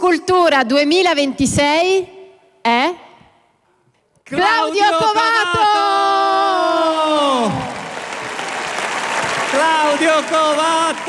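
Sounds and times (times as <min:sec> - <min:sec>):
speech: 0:00.0 - 0:03.0, 0:04.3 - 0:05.7
audience applause: 0:06.6 - 0:11.0.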